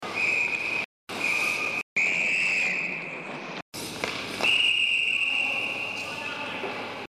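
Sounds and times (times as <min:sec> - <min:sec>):
hockey referee whistle blowing: 0:00.1 - 0:03.1, 0:04.4 - 0:06.3.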